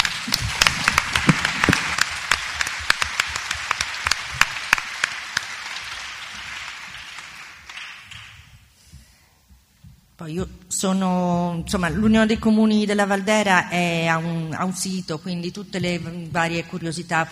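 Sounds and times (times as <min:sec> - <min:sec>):
audience applause: 0:00.0 - 0:08.5
speech: 0:10.3 - 0:17.3.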